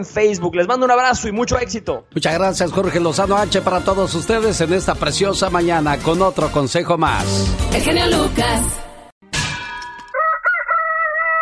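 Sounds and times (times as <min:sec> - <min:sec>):
speech: 0:00.0 - 0:08.8
rooster crowing: 0:10.1 - 0:11.4.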